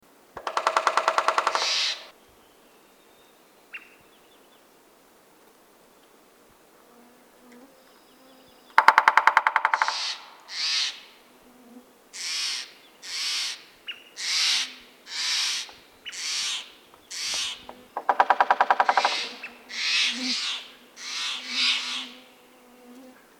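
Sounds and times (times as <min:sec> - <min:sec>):
American Three-toed Woodpecker Picoides dorsalis: 0:00.4 - 0:02.2, 0:08.7 - 0:11.1, 0:12.2 - 0:22.2.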